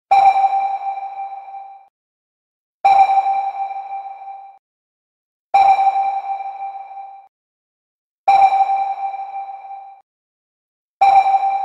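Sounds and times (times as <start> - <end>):
submarine sonar ping: 0.1 - 1.9, 2.9 - 4.6, 5.6 - 7.3, 8.3 - 10.0, 11.0 - 11.6.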